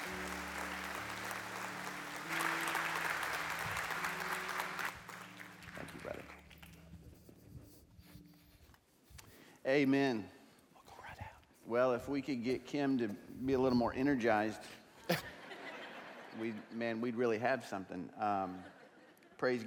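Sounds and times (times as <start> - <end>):
audience applause: 0.0 - 6.8
soft instrumental music: 0.0 - 14.6
speech: 9.7 - 10.3, 11.7 - 15.2, 16.4 - 18.8, 19.4 - 19.6
laughter: 15.1 - 16.8.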